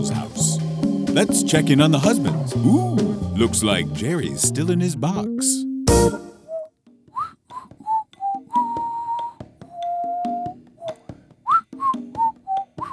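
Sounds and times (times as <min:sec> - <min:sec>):
speech: 0:00.0 - 0:00.4, 0:01.2 - 0:06.2
person whistling a bouncy tune: 0:05.9 - 0:12.9.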